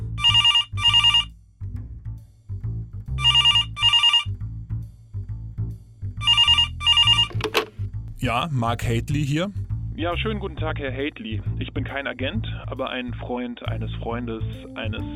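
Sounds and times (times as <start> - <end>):
telephone ringing: 0.2 - 1.3, 3.2 - 4.3, 6.2 - 7.6
speech: 8.2 - 15.1.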